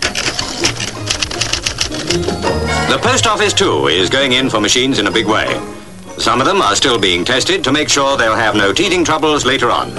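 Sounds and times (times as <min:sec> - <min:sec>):
automatic auto-typist typewriters typing preset sentences: 0:00.0 - 0:02.5
speech: 0:02.1 - 0:09.9.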